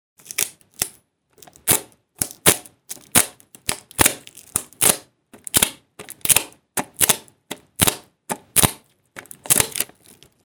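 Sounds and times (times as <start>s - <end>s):
adhesive tape: 0.2s - 8.8s, 9.4s - 10.4s.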